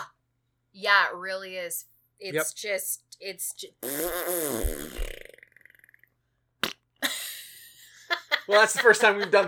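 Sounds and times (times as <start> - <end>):
speech: 0.8 - 5.2, 8.5 - 9.4
long loud wet fart noise blown with the mouth: 3.8 - 6.9.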